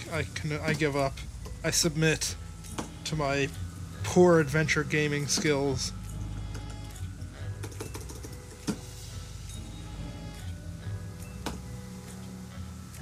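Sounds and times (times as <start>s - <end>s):
steady low hum: 0.0s - 12.9s
speech: 0.1s - 2.4s, 3.1s - 6.0s
loud typing on a computer keyboard: 7.6s - 8.5s.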